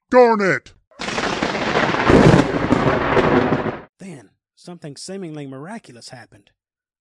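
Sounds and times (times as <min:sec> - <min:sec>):
speech: 0:00.1 - 0:00.8, 0:04.1 - 0:06.6
lightning strike thunderclap: 0:01.0 - 0:03.9.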